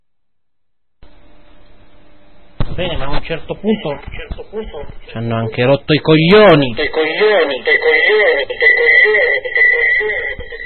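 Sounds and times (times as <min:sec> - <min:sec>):
speech: 0:02.8 - 0:10.5
voice with tinny radio-like echo effect: 0:03.5 - 0:10.4.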